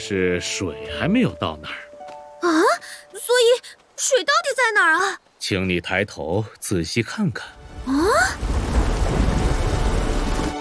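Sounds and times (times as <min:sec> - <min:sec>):
speech: 0:00.1 - 0:01.9, 0:04.0 - 0:08.6
heavy rain in a thunderstorm: 0:02.8 - 0:10.5
deep rumble of thunder in a thunderstorm: 0:07.8 - 0:10.5.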